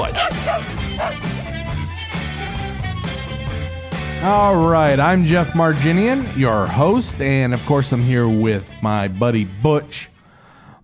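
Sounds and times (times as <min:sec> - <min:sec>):
speech: 0:00.0 - 0:01.3, 0:04.2 - 0:10.1
dog barking: 0:00.0 - 0:01.4
busy music bed: 0:00.0 - 0:10.8.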